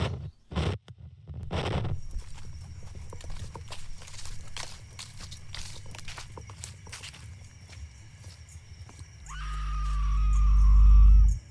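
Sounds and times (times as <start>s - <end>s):
hooves clopping in a horror film trailer: 1.9s - 10.8s
loud drawn-out scream in a horror film trailer: 9.2s - 11.4s.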